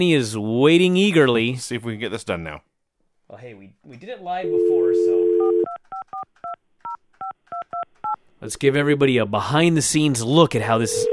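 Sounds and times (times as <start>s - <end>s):
speech: 0.0s - 2.7s, 3.3s - 6.6s, 7.2s - 11.1s
telephone keypad dialing tones: 5.2s - 8.2s.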